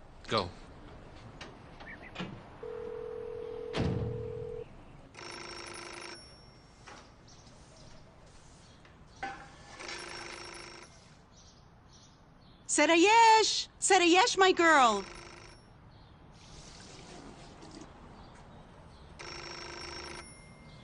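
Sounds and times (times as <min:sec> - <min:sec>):
speech: 0:00.3 - 0:00.6, 0:12.8 - 0:15.2
telephone ringing: 0:02.6 - 0:07.0, 0:09.7 - 0:11.1, 0:14.7 - 0:15.7, 0:19.2 - 0:20.8.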